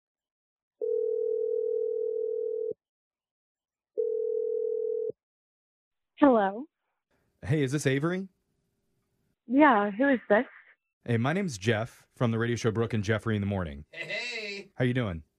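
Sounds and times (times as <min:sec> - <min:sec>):
telephone dial tone: 0:00.8 - 0:02.8, 0:04.0 - 0:05.1
speech: 0:06.2 - 0:06.7, 0:07.4 - 0:08.4, 0:09.5 - 0:15.3.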